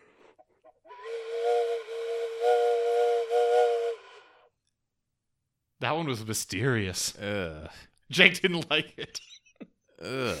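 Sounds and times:
steam train whistle blowing: 0:00.9 - 0:04.5
speech: 0:05.8 - 0:09.4, 0:10.0 - 0:10.3.

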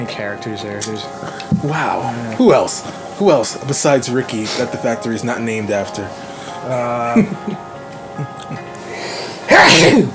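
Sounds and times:
speech: 0:00.0 - 0:08.7, 0:09.6 - 0:10.1
voiced intake of breath: 0:04.4 - 0:04.8, 0:06.1 - 0:06.9, 0:08.8 - 0:09.5
person sneezing: 0:09.5 - 0:10.1.

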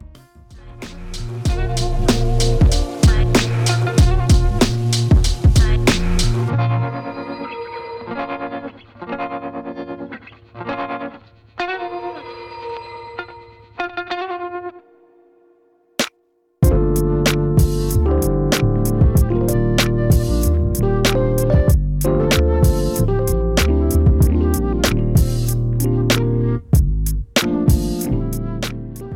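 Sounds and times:
dense punchy hip-hop beat: 0:00.0 - 0:07.0, 0:16.0 - 0:29.1.

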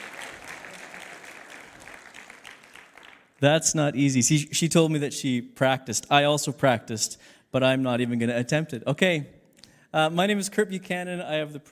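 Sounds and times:
room full of people clapping: 0:00.0 - 0:03.4
speech: 0:03.4 - 0:11.7.

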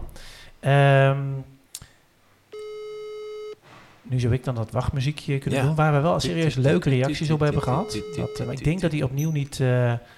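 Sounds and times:
speech: 0:00.2 - 0:01.6, 0:04.1 - 0:10.1
long electronic ringback tone from an unanswered phone call: 0:02.6 - 0:03.6, 0:07.1 - 0:08.9.

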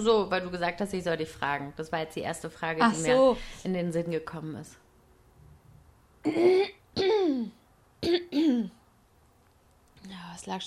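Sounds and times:
speech: 0:00.0 - 0:04.8, 0:06.2 - 0:08.8, 0:10.0 - 0:10.6
person coughing after laughing: 0:06.2 - 0:08.8.

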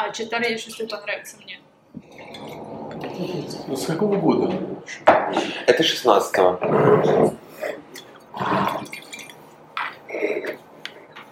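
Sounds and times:
speech: 0:00.1 - 0:07.4
wine pouring into a small glass and a large glass: 0:02.0 - 0:03.6, 0:08.5 - 0:09.4
faint glassy clinks: 0:02.1 - 0:03.0, 0:08.0 - 0:09.4.

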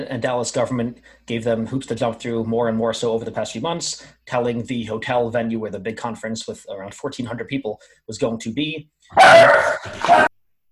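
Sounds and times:
speech: 0:00.0 - 0:10.3
dog howling cry: 0:09.2 - 0:10.3.

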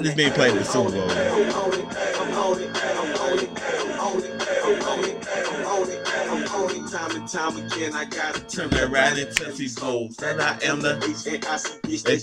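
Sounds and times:
hip-hop track playing: 0:00.0 - 0:12.2
speech: 0:00.0 - 0:12.2.

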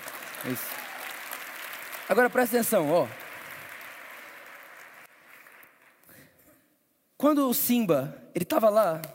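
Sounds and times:
audience applause: 0:00.0 - 0:06.0
speech: 0:00.4 - 0:00.8, 0:02.1 - 0:03.2, 0:07.2 - 0:09.1.

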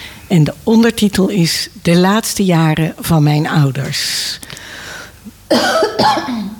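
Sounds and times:
faint hum: 0:00.0 - 0:06.5
speech: 0:00.3 - 0:04.8, 0:05.5 - 0:06.5
harsh breathy coughs: 0:05.5 - 0:06.5.

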